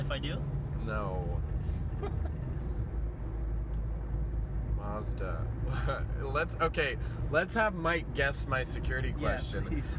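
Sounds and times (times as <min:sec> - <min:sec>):
moving car engine rumble: 0:00.0 - 0:09.9
road drone from a moving car: 0:00.0 - 0:09.9
speech: 0:00.1 - 0:02.4, 0:04.9 - 0:09.9.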